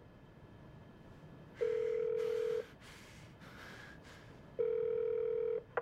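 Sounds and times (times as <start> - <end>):
long steady phone ringback tones: 1.6 - 2.6, 4.6 - 5.6.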